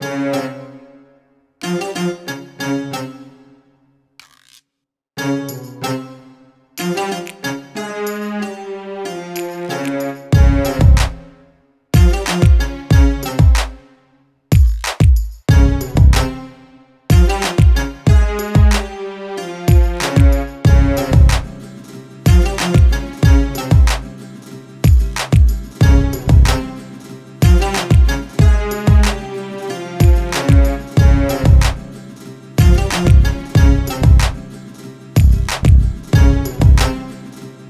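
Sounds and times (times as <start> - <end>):
exotic hip hop loop in A minor: 9.3 - 11.3, 12.0 - 13.8, 14.5 - 16.4, 17.1 - 19.0, 19.7 - 21.6, 22.3 - 24.1, 24.8 - 26.8, 27.4 - 32.0, 32.6 - 34.5, 35.2 - 37.1.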